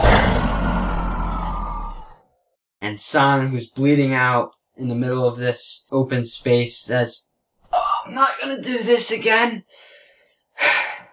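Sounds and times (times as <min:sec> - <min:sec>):
person imitating a rough throaty roar: 0:00.0 - 0:02.2
speech: 0:02.8 - 0:07.3, 0:08.0 - 0:09.9.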